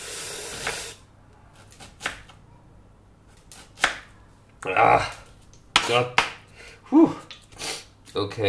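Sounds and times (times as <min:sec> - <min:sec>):
knife chopping an onion: 0:01.5 - 0:02.4, 0:03.3 - 0:04.1, 0:05.7 - 0:06.4
speech: 0:04.6 - 0:05.2, 0:05.9 - 0:06.2, 0:06.9 - 0:07.2, 0:08.2 - 0:08.4.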